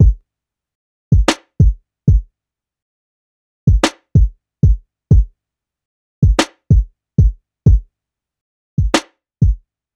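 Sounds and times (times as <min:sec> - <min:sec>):
kick and snare drum loop: 0:00.0 - 0:00.2, 0:01.2 - 0:02.2, 0:03.7 - 0:05.3, 0:06.2 - 0:07.8, 0:08.8 - 0:09.6.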